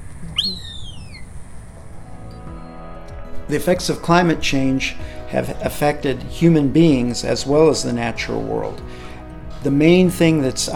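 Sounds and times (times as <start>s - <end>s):
low rumbling outdoor background: 0.0s - 10.7s
whistly bird call: 0.2s - 1.3s
speech: 3.5s - 10.7s.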